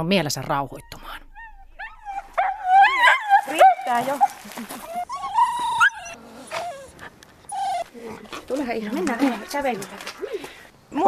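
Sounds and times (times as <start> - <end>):
speech: 0.0 - 1.2, 3.9 - 4.9, 8.5 - 10.3
faint outdoor noise: 0.0 - 11.0
excited dog whining before a walk: 0.8 - 3.9, 4.8 - 8.3.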